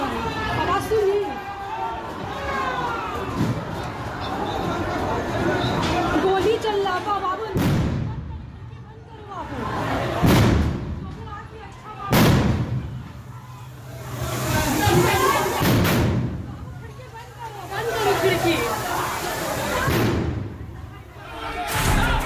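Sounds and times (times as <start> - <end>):
people talking or shouting: 0.0 - 22.2
bombs exploding during a daytime street attack in Shivpur, Howrah: 7.6 - 8.3, 10.2 - 11.1, 12.1 - 13.2, 14.9 - 16.6, 19.8 - 20.6.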